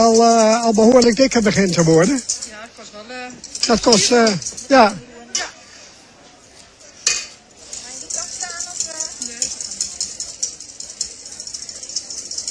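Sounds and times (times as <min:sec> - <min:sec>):
utensil stirring homemade mayonnaise in a bowl as oil is added: 0:00.0 - 0:05.0, 0:07.1 - 0:12.4
speech: 0:00.0 - 0:05.5.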